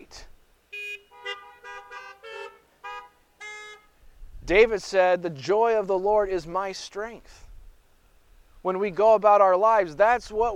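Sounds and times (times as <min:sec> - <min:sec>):
several car horns honking: 0:00.7 - 0:04.0
speech: 0:04.5 - 0:07.4, 0:08.6 - 0:10.5.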